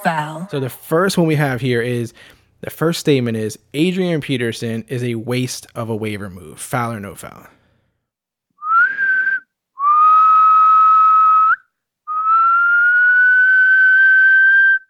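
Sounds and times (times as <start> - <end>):
speech: 0.0 - 7.6
referee whistle blasts: 8.6 - 14.8.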